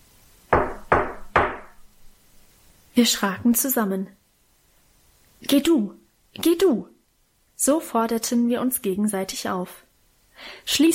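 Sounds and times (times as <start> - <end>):
firm knocking on a house's front door: 0.5 - 1.8
speech: 3.0 - 4.2, 5.5 - 6.9, 7.6 - 9.8, 10.4 - 10.9.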